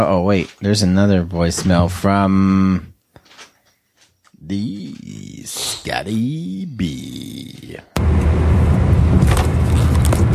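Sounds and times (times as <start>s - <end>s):
speech: 0.0s - 2.9s, 4.5s - 8.8s
car engine and road rumble heard through a phone voicemail: 8.0s - 10.3s.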